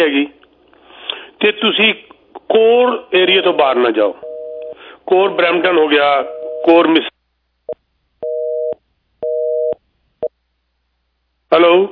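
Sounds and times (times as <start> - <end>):
speech: 0.0 - 0.4, 1.4 - 4.3, 5.1 - 7.1, 11.5 - 11.8
telephone busy tone after a call is disconnected: 4.2 - 4.8, 6.3 - 6.8, 8.2 - 9.8.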